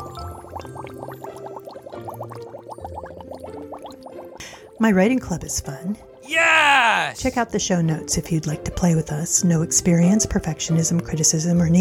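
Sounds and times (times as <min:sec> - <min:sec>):
bubbles blown through a straw into a thick chocolate malt: 0:00.3 - 0:04.1
speech: 0:04.8 - 0:11.8.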